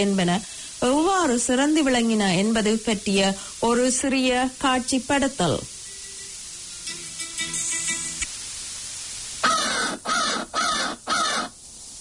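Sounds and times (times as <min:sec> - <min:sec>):
speech: 0:00.0 - 0:05.8
crow cawing: 0:09.4 - 0:11.6.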